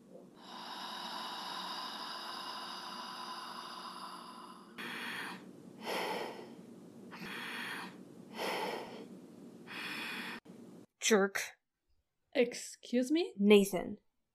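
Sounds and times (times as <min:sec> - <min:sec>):
steady low hum: 0:00.0 - 0:10.9
person demonstrating slow breathing: 0:00.3 - 0:10.4
speech: 0:11.1 - 0:11.6, 0:12.4 - 0:14.0.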